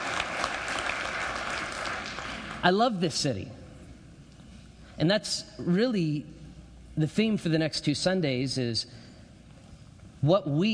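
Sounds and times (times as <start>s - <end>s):
church congregation applauding: 0.0s - 2.7s
speech: 2.6s - 3.6s, 5.0s - 6.4s, 7.0s - 9.0s, 10.2s - 10.7s.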